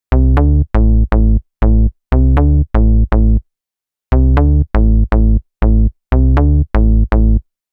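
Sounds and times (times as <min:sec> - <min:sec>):
deep house bass loop in A at 120 BPM: 0:00.1 - 0:03.4, 0:04.1 - 0:07.4.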